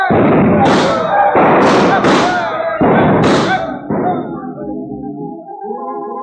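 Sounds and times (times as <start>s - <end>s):
revolvers firing in a shooting contest: 0.1s - 4.4s.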